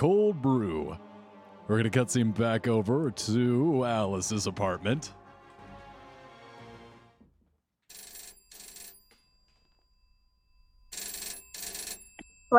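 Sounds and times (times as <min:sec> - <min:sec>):
speech: 0:00.0 - 0:01.1, 0:01.7 - 0:05.2
music: 0:00.0 - 0:07.2
telephone ringing in an apartment: 0:07.9 - 0:12.5.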